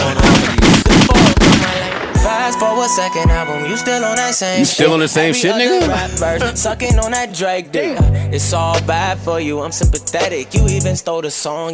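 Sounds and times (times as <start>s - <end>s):
loud rapid bursts of gunfire sound effects: 0.0s - 2.4s
speech: 2.8s - 11.7s.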